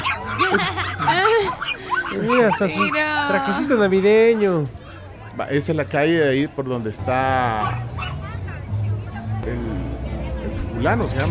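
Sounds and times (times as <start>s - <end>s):
small dogs yipping and barking in high-pitched bursts: 0.0s - 3.6s, 7.5s - 8.4s
laughter: 0.0s - 3.8s
speech: 0.5s - 0.8s, 1.4s - 4.8s, 5.4s - 8.1s, 9.5s - 9.9s, 10.8s - 11.2s.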